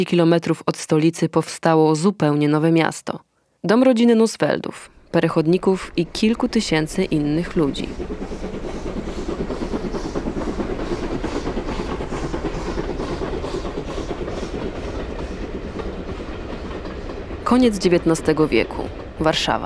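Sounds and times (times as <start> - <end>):
speech: 0.0 - 8.3, 17.5 - 19.6
train passing on rails: 4.9 - 19.6
train wheels clickety-clack over a heavy rumble: 6.1 - 19.6.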